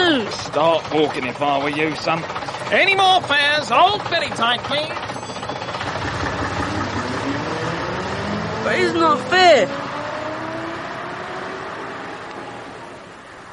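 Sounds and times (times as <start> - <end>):
bus engine idling then pulling away: 0.0 - 9.6
speech: 0.2 - 5.4, 8.6 - 9.8.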